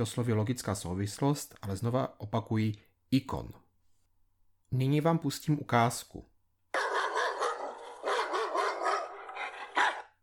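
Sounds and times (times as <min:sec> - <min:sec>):
speech: 0:00.0 - 0:03.6, 0:04.7 - 0:06.3
dog barking: 0:06.8 - 0:10.2.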